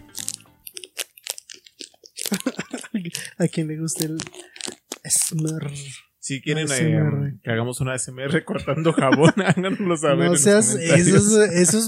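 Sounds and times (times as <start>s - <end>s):
crunchy snack being bitten and chewed: 0.0s - 5.9s
laughter: 2.3s - 3.5s, 8.3s - 11.8s
speech: 3.0s - 4.4s, 5.1s - 11.8s.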